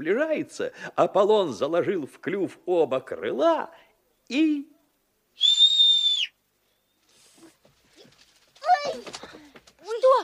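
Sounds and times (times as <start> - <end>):
speech: 0.0 - 4.7
loud piercing whistle: 5.4 - 6.4.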